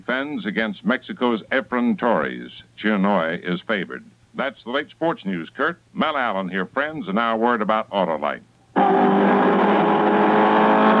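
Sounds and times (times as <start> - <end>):
speech: 0.0 - 9.3
Ford Mark IV race car engine roaring at high revs: 8.8 - 10.9.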